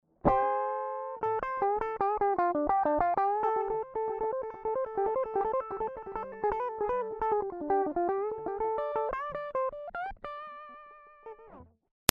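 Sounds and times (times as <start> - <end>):
American high-gain electric guitar lead: 0.3 - 12.1.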